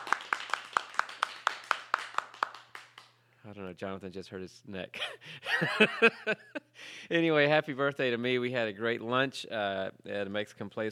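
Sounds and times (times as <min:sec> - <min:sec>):
group of people clapping fast: 0:00.0 - 0:03.2
speech: 0:03.4 - 0:10.8.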